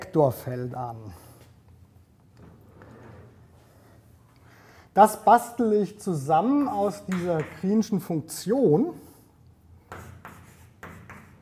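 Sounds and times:
speech: 0.1 - 1.3, 5.0 - 9.1
writing strokes on a board during a physics lecture: 9.8 - 11.4.

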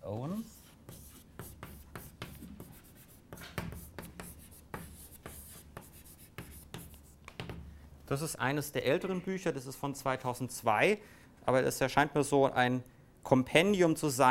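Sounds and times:
scratchy writing on a board: 0.2 - 7.6
speech: 8.1 - 14.2.

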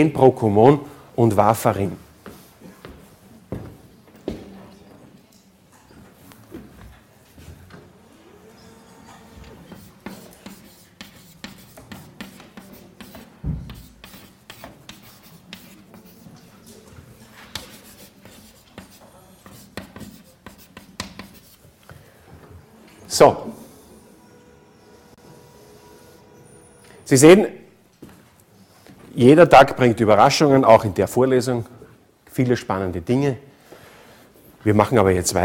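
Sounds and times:
speech: 0.0 - 2.0, 27.1 - 27.6, 29.2 - 31.8, 32.4 - 33.5, 34.6 - 35.4
chalk writing on a blackboard during a lecture: 9.4 - 21.7.

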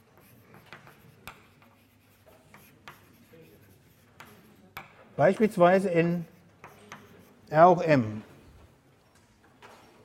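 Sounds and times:
writing on a board during a mathematics lecture: 0.0 - 7.7
speech: 5.2 - 6.3, 7.5 - 8.3.

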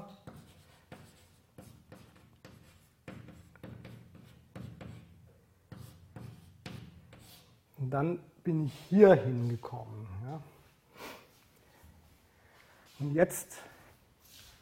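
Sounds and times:
pen scratching on paper while writing letters: 0.1 - 5.1
speech: 7.8 - 10.5, 13.0 - 13.7.

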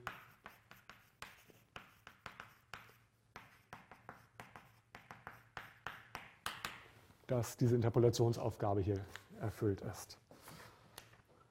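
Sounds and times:
writing on a board: 0.0 - 6.8
speech: 7.3 - 10.2.

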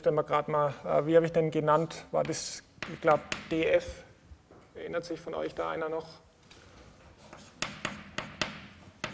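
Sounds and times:
speech: 0.0 - 4.1, 4.8 - 6.2
quiet writing strokes: 7.2 - 9.1.

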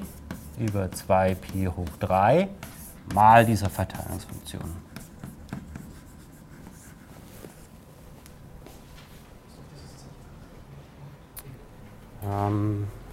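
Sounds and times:
scratchy writing on a board during a physics lecture: 0.0 - 7.8
low hum: 0.0 - 13.1
speech: 0.6 - 4.9, 12.3 - 13.0.

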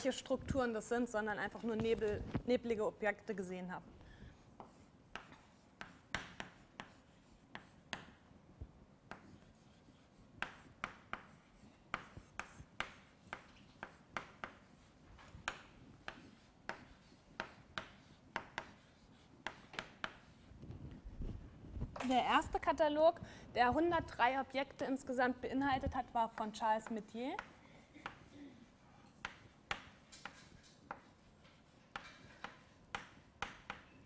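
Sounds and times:
speech: 0.0 - 4.0, 22.1 - 27.5
pen writing a word by hand: 4.6 - 8.1, 9.1 - 15.0, 16.0 - 20.5, 26.3 - 34.0.

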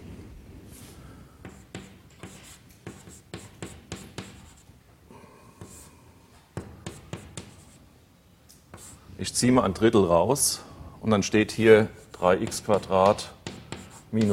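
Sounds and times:
scratchy writing strokes during a math lecture: 1.4 - 4.8, 5.6 - 5.9, 6.6 - 7.9, 8.7 - 9.0, 11.8 - 14.3
speech: 8.8 - 13.4, 14.1 - 14.3.

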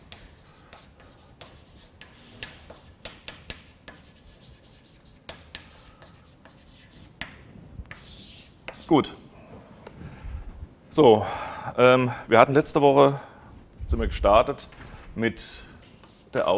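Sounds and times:
chalk writing on a blackboard during a lecture: 0.0 - 9.0, 15.8 - 16.5
speech: 8.9 - 9.2, 11.0 - 13.3, 13.9 - 15.7, 16.4 - 16.5.

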